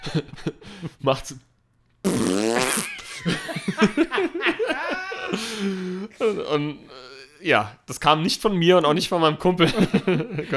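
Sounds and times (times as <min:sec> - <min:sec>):
speech: 0:00.1 - 0:02.4, 0:03.2 - 0:10.5
voice blowing a sputtering fart-like raspberry: 0:02.0 - 0:03.1
person laughing: 0:02.5 - 0:07.4
drawn-out vocal tone: 0:04.8 - 0:07.8.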